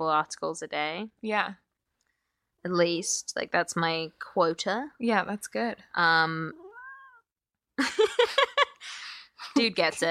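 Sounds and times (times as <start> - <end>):
speech: 0.0 - 1.6, 2.6 - 6.6, 9.6 - 10.0
cat meowing: 6.5 - 7.3.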